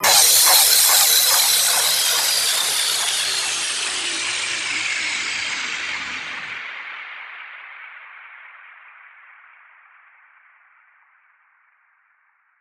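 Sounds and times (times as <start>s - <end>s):
dubstep one-shot crash cymbal hit: 0.0s - 6.8s.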